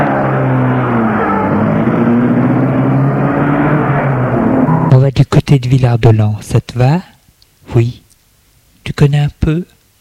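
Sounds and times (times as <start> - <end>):
continuous road rumble: 0.0 - 4.9
car engine humming as the car pulls away from a house: 0.0 - 5.0
speech: 5.5 - 7.1, 7.7 - 8.0, 9.0 - 9.8.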